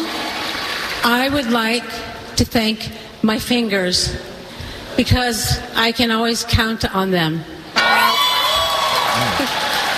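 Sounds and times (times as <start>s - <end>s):
speech: 1.0s - 4.3s, 5.0s - 8.0s, 9.3s - 9.6s
bright overlapping shouts and cries: 7.8s - 9.9s
large audience at an award show cheering and whooping: 7.8s - 9.9s.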